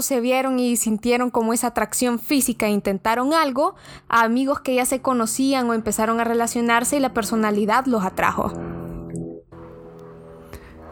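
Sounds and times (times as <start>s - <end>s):
speech: 0.0s - 8.8s
small propeller plane flying over a house: 3.7s - 10.9s.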